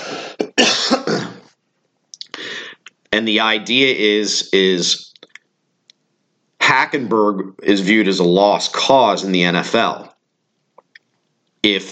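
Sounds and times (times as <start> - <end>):
person coughing: 0.0 - 1.5
throat noises: 0.0 - 1.5, 2.2 - 3.0
speech: 3.1 - 5.1, 6.8 - 10.1, 11.6 - 11.9.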